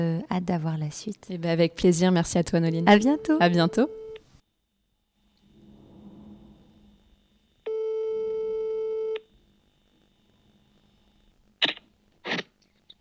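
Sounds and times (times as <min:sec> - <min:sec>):
speech: 0:00.0 - 0:04.0
low hum: 0:00.0 - 0:12.9
telephone ringing tone: 0:02.8 - 0:04.2, 0:07.7 - 0:09.2.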